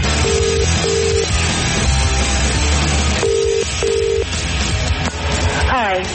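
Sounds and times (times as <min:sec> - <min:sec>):
dense noisy background: 0:00.0 - 0:06.1
telephone keypad tones: 0:00.2 - 0:01.3, 0:03.2 - 0:04.2.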